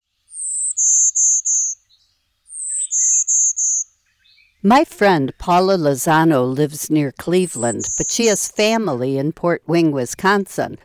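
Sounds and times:
Golden-winged Warbler song: 0.1 - 5.8, 7.6 - 9.0
speech: 4.6 - 10.8.

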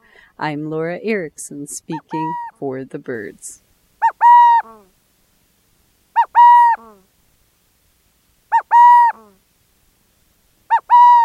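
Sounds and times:
speech: 0.4 - 3.6
owl hooting in Arizona: 1.9 - 2.6, 4.0 - 4.8, 6.1 - 7.0, 8.5 - 9.4, 10.7 - 11.2.

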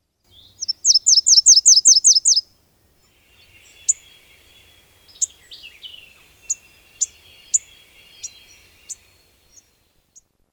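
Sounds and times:
Nashville Warbler song of high rapid repeated notes: 0.3 - 2.4, 3.1 - 9.7
scattered sharp chips: 0.5 - 2.4, 3.5 - 9.1.

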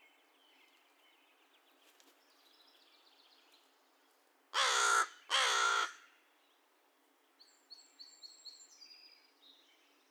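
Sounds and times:
American crow cawing: 4.6 - 6.0.

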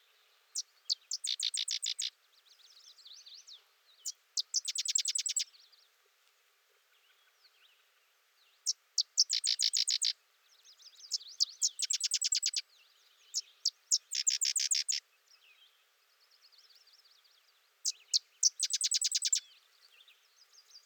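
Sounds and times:
sedge wren singing: 0.6 - 5.5, 8.6 - 15.0, 16.5 - 20.8.

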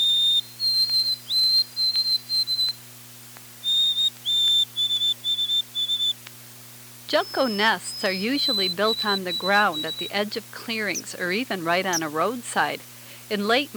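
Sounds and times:
white-throated sparrow singing melodic whistled song: 0.0 - 2.8, 3.6 - 6.2, 7.1 - 11.2, 11.9 - 12.1
faint steady hum: 0.0 - 13.7
speech: 7.1 - 13.7.

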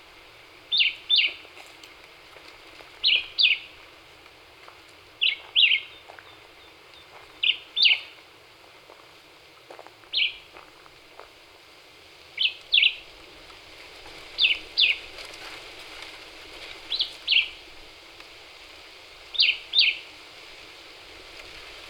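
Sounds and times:
faint background hiss: 0.0 - 21.8
Black-whiskered vireo song with short two-part chirping phrases: 0.6 - 1.4, 3.0 - 3.8, 5.2 - 8.2, 10.1 - 10.5, 12.4 - 13.1, 14.4 - 15.0, 16.9 - 17.6, 19.3 - 20.1.

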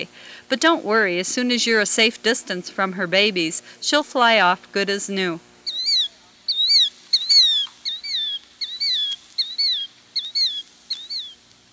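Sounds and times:
speech: 0.0 - 5.5
ring-billed gull colony calling: 1.3 - 11.7.

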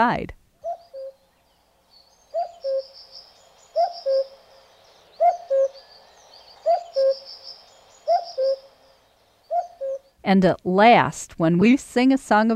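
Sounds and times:
speech: 0.0 - 0.4, 10.3 - 12.5
European cuckoo calling its two-note cu-ckoo: 0.6 - 1.4, 2.0 - 10.2
faint high-pitched birdsong: 0.6 - 10.2.

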